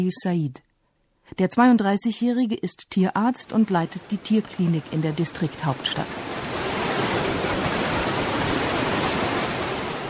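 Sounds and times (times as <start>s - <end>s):
speech: 0.0s - 0.7s, 1.3s - 6.4s
rushing river roar: 3.6s - 10.0s.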